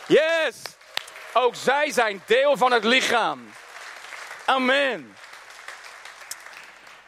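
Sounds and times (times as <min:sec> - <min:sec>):
crowd applauding the children: 0:00.0 - 0:07.0
speech: 0:00.1 - 0:03.6, 0:04.5 - 0:05.2.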